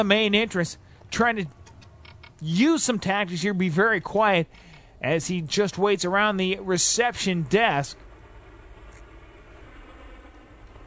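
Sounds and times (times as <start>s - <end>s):
speech: 0.0s - 1.6s, 2.4s - 8.0s
train rumbling past at a distance: 5.2s - 10.8s.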